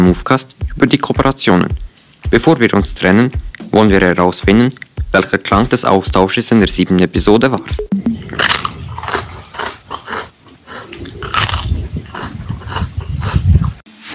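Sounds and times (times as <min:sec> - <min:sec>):
speech: 0:00.1 - 0:08.5
crunching as someone bites into an ice cream wafer cone: 0:08.4 - 0:13.7.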